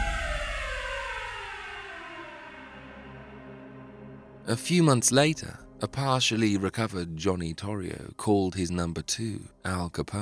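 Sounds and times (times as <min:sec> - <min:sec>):
police car sirens wailing as police cars arrive: 0:00.0 - 0:03.5
low rumbling background: 0:00.0 - 0:08.2
speech: 0:04.5 - 0:10.2.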